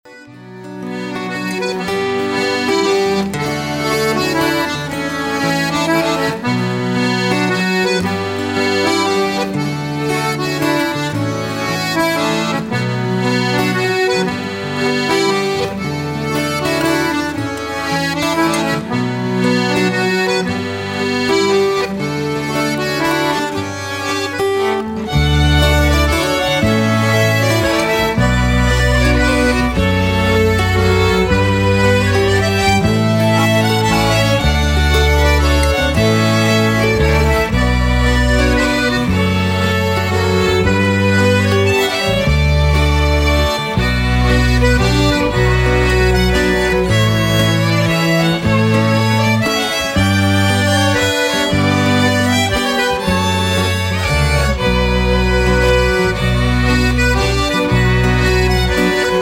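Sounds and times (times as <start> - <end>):
mazurka dance music: 0.0 - 59.2.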